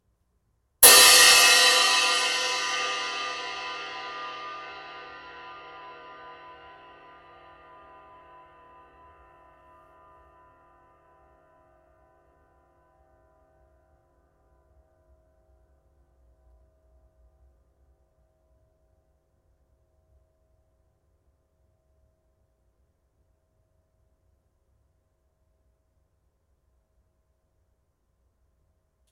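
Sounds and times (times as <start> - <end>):
21in Mega Bell Ride cymbal: 0.8 - 6.6.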